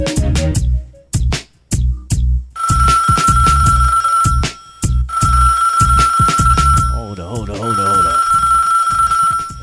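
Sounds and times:
pounding rhythmic beat: 0:00.0 - 0:07.9
telephone ringing: 0:02.6 - 0:09.6.

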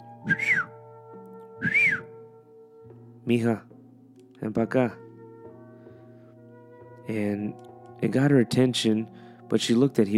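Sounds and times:
man whistling at a statue shop stall: 0:00.0 - 0:02.4
speech: 0:00.2 - 0:00.7, 0:03.3 - 0:03.7, 0:04.4 - 0:05.0, 0:07.1 - 0:10.1.

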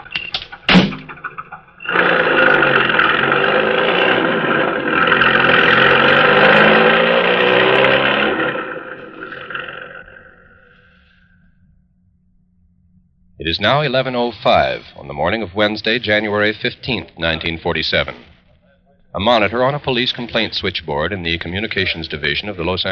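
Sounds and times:
car engine revving and speeding away: 0:01.8 - 0:10.8
speech: 0:13.6 - 0:18.3, 0:19.1 - 0:22.9.

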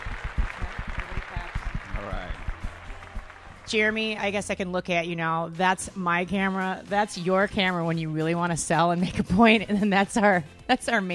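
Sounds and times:
small group applauding: 0:00.0 - 0:04.0
speech: 0:03.7 - 0:11.1.

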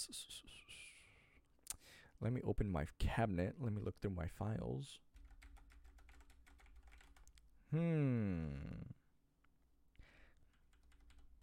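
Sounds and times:
speech: 0:00.0 - 0:00.5, 0:02.2 - 0:05.0, 0:07.7 - 0:09.0
clicking on a computer keyboard: 0:05.2 - 0:07.4.

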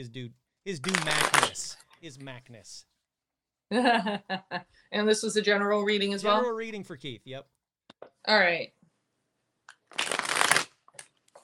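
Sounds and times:
speech: 0:00.0 - 0:02.9, 0:03.7 - 0:07.5, 0:08.2 - 0:08.8
tarot cards being shuffled for a reading: 0:00.8 - 0:01.8, 0:09.7 - 0:11.4.

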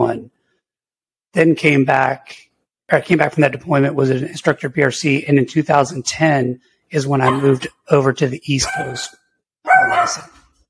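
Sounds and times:
speech: 0:01.3 - 0:09.2, 0:09.8 - 0:10.4
miniature schnauzer barking: 0:07.2 - 0:07.6, 0:08.6 - 0:09.1, 0:09.7 - 0:10.4.

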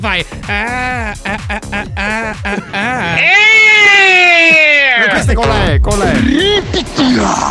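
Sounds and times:
speech: 0:00.0 - 0:03.4
woman making short bouncy vocal sounds: 0:00.0 - 0:04.8
laughter: 0:00.0 - 0:07.4.

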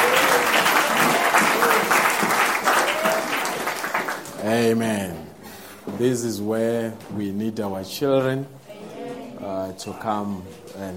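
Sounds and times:
audience applauding: 0:00.0 - 0:04.4
speech: 0:04.5 - 0:05.2, 0:05.9 - 0:08.6, 0:09.4 - 0:10.9.

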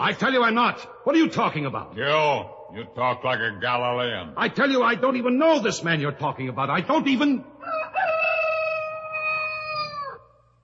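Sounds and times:
speech: 0:00.0 - 0:07.5
rooster crowing: 0:07.6 - 0:10.4.

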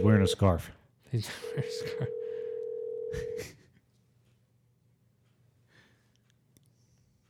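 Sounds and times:
people talking: 0:00.0 - 0:02.2
telephone ringing tone of a placed call: 0:01.4 - 0:03.4.

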